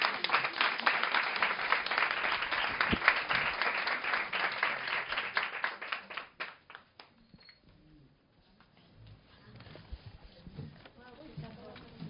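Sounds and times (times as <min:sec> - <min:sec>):
audience applause at an evening event: 0:00.0 - 0:06.9.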